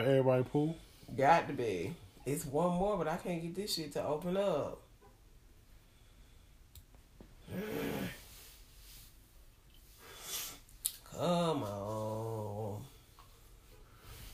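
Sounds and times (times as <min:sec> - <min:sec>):
speech: 0:00.0 - 0:04.8, 0:07.5 - 0:08.1, 0:11.2 - 0:12.2
person yawning: 0:07.4 - 0:08.2, 0:11.0 - 0:12.9
breathy vocal sound: 0:07.4 - 0:08.4, 0:11.0 - 0:13.1.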